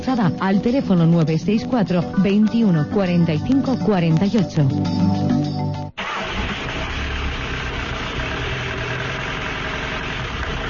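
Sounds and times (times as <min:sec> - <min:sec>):
speech: 0:00.1 - 0:05.4
car engine running with a rough idle: 0:06.0 - 0:10.6.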